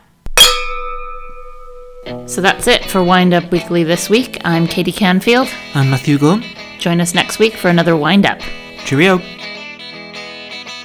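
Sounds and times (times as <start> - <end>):
glasses clinking together in a toast: 0.4 - 2.2
speech: 2.0 - 9.4.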